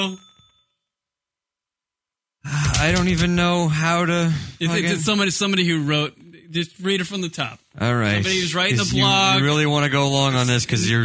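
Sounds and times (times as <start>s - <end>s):
speech: 0.0s - 0.2s, 2.4s - 11.0s
small bell struck once: 0.0s - 0.9s.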